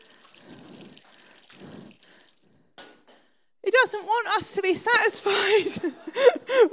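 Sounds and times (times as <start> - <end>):
water pouring and splashing: 0.0 - 2.8
speech: 3.8 - 6.7.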